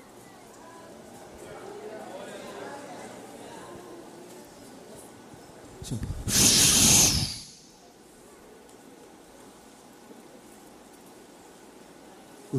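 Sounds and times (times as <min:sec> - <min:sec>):
speech: 0:05.8 - 0:06.6
voice imitating a rough stormy sea with a breathy hiss: 0:06.2 - 0:07.7.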